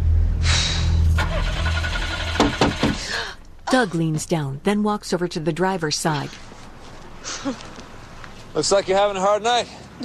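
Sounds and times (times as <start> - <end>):
low engine rumble: 0.0 - 9.4
Ford car starter grinding and whining in the rain: 1.1 - 3.2
sharp thumps: 2.3 - 3.1
speech: 3.7 - 6.5, 7.3 - 7.7, 8.6 - 10.0.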